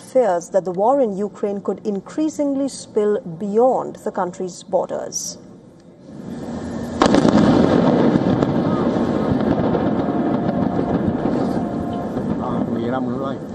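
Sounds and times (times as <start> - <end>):
speech: 0.1 - 5.4, 12.9 - 13.5
explosion echoing across coastline: 6.1 - 13.5.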